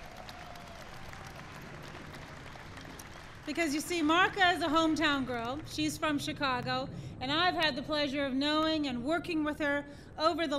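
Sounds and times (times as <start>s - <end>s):
audience applauding: 0.0s - 5.7s
speech: 3.5s - 10.5s.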